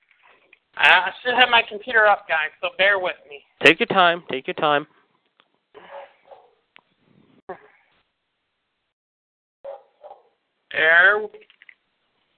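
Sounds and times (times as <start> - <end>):
speech: 0.8 - 5.0, 10.8 - 11.5
dog barking: 5.8 - 6.6, 9.6 - 10.4.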